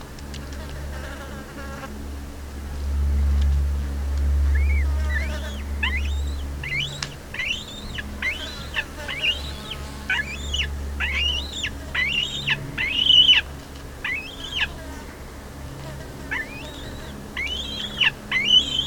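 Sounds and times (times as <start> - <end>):
low humming background: 0.0 - 18.8
black-breasted buzzard Hamirostra melanosternon whistled calls: 4.5 - 14.9, 16.3 - 18.8.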